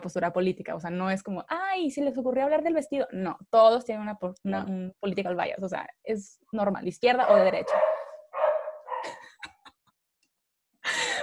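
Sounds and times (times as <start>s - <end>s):
speech: 0.0s - 7.9s
pet dog barking and yipping: 7.2s - 9.2s.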